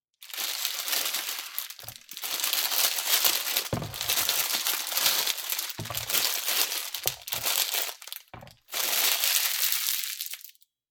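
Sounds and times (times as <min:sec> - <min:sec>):
bag of green peppers opening: 0:00.2 - 0:10.6
green peppers placed on a cutting board: 0:03.7 - 0:04.4, 0:05.8 - 0:06.4, 0:07.0 - 0:07.6, 0:08.4 - 0:08.6.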